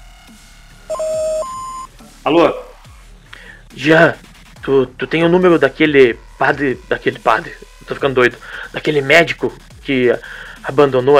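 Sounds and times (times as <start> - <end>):
speech: 0.3 - 1.6, 2.3 - 2.6, 3.7 - 11.1
answering machine electronic beep tone: 0.9 - 1.9.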